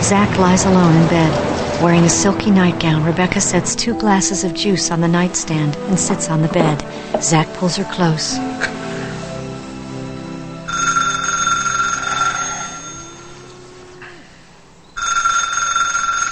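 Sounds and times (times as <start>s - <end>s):
low steady hum: 0.0s - 15.0s
speech: 0.1s - 8.8s
telephone ringing in a bedroom: 10.7s - 13.4s, 14.9s - 16.2s.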